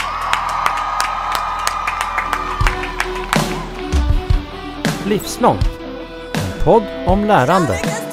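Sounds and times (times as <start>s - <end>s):
audience cheers and whoops: 0.0s - 3.8s
large audience applauding: 0.0s - 4.2s
speech: 5.1s - 5.8s, 6.6s - 8.0s.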